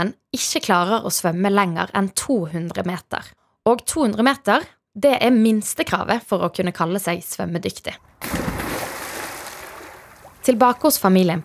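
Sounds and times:
speech: 0.0s - 8.4s, 10.4s - 11.4s
hands splashing water at pool edge: 8.2s - 11.4s.

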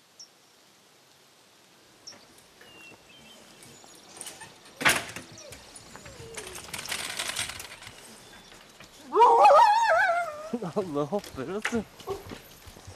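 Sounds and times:
rustling: 2.1s - 12.9s
huskies barking and yelping in a dog yard: 3.6s - 10.9s
clattering: 4.2s - 8.9s
speech: 10.6s - 12.4s.

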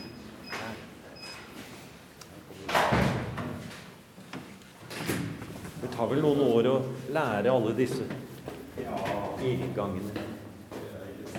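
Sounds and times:
heavy wrought-iron cellar door opening and closing in a cellar in Oslo: 2.7s - 3.7s, 4.9s - 5.4s
speech: 6.0s - 8.3s, 9.4s - 10.3s.

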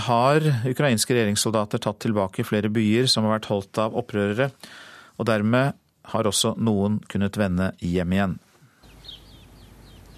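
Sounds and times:
speech: 0.0s - 8.4s
birdsong in a quiet small town in eastern Ukraine: 8.8s - 10.1s.

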